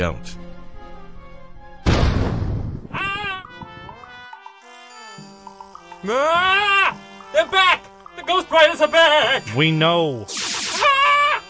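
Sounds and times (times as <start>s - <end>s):
speech: 0.0s - 0.4s, 6.0s - 10.4s
loud booming blast: 1.8s - 3.0s.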